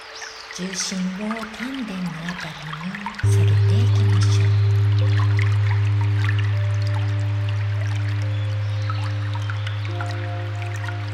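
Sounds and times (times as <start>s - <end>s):
water trickling and dripping: 0.0s - 11.1s
speech: 0.6s - 4.4s
deep constant low hum: 3.2s - 11.1s.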